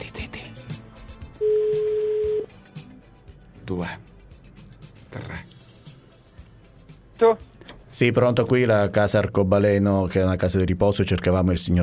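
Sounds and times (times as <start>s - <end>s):
ringback tone on an outgoing phone call: 1.4s - 2.5s
speech: 3.7s - 4.1s, 8.0s - 11.8s.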